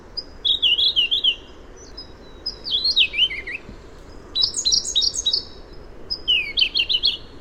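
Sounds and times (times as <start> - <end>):
low background hiss: 0.0 - 7.3
Siberian blue robin song whistles and trills: 0.2 - 3.7, 4.3 - 7.3.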